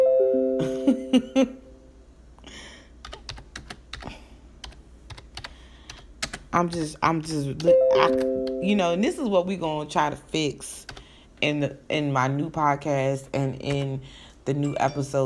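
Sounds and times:
speech: 0.9 - 1.6, 6.5 - 15.2
typing on a computer keyboard: 3.0 - 6.9, 13.6 - 13.9.

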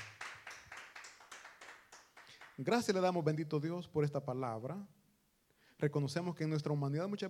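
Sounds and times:
audience clapping rhythmically during a sermon: 0.0 - 3.0
speech: 2.6 - 5.0, 5.8 - 7.2.

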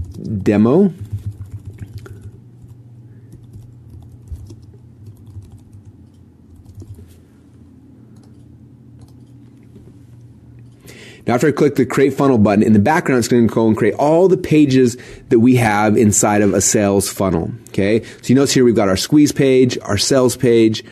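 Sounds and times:
speech: 0.3 - 1.1, 11.3 - 20.9
rapid typing on a computer keyboard: 1.0 - 7.0, 8.2 - 9.3.

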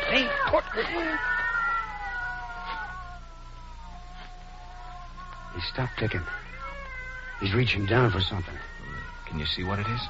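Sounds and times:
cats yowling and caterwauling: 0.0 - 10.0
speech: 0.1 - 1.4, 5.6 - 6.6, 7.4 - 10.0.

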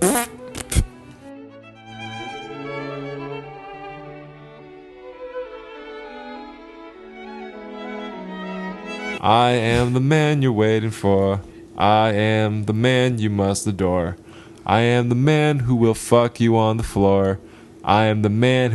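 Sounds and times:
raspy fart sound effect: 0.0 - 0.9
speech: 9.2 - 18.7.

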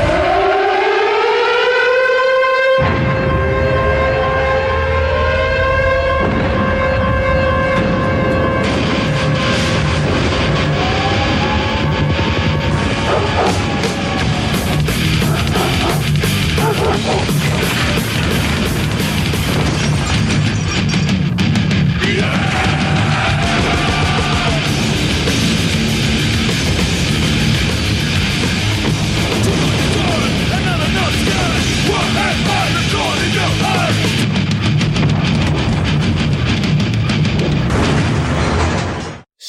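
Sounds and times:
loud wailing siren: 0.0 - 17.9
heavy rock music with pounding drums and distorted guitar: 2.7 - 38.2.

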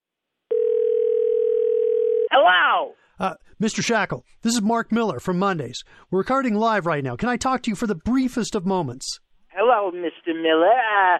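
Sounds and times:
steady telephone dial tone: 0.5 - 2.3
speech: 2.4 - 11.1.

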